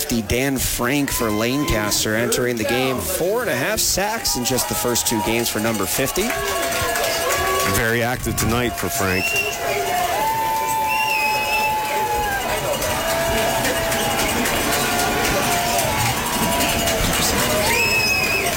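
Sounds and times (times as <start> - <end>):
large football stadium crowd cheering: 0.0 - 18.5
speech: 0.1 - 6.9, 7.7 - 9.7
shrill whistles in stadium crowd: 9.1 - 12.4, 16.6 - 18.5.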